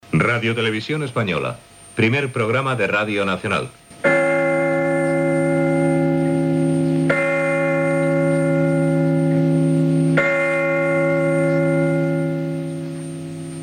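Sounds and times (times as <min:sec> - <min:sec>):
speech: 0:00.1 - 0:04.2
deep resonant cathedral bells of León Cathedral in Spain tolling: 0:04.0 - 0:13.6.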